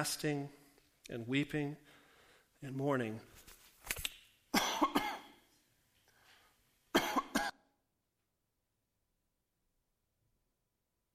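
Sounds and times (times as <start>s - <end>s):
speech: 0.0s - 2.0s, 2.6s - 3.5s
person coughing into a microphone: 4.5s - 5.5s, 6.9s - 7.8s.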